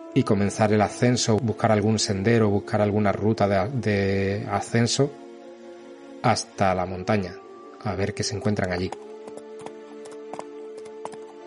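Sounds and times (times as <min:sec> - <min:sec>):
speech: 0:00.2 - 0:05.2, 0:06.2 - 0:09.1
hooves of ridden horses clip-clopping at a walk: 0:08.6 - 0:11.4.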